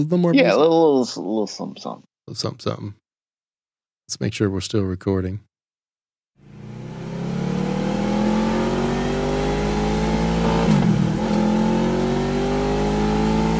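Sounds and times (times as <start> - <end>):
speech: 0.0 - 3.0, 4.1 - 5.5
VTEC engine revving through aftermarket exhaust: 6.4 - 13.5.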